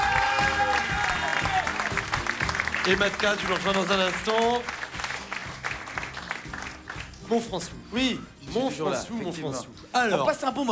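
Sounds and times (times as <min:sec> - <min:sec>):
audience applause welcoming a performer at a youth and culture centre: 0:00.0 - 0:07.2
speech: 0:02.9 - 0:04.8, 0:07.3 - 0:10.7.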